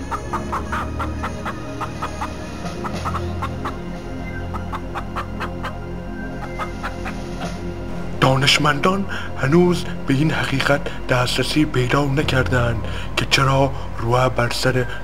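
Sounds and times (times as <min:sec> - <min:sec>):
flock of chickens clucking: 0:00.0 - 0:07.6
constant low rumble: 0:00.0 - 0:15.0
speech: 0:08.4 - 0:15.0.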